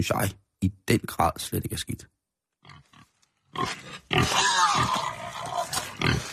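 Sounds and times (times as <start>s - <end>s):
speech: 0.0s - 2.2s, 3.6s - 5.2s
pig grunting and snorting with squealy edges: 2.6s - 6.3s.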